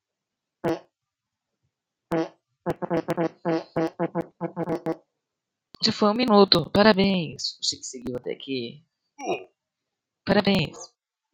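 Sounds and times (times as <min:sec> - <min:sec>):
fake fart noises: 0:00.6 - 0:00.8, 0:02.1 - 0:05.0
speech: 0:05.8 - 0:09.4, 0:10.3 - 0:11.3.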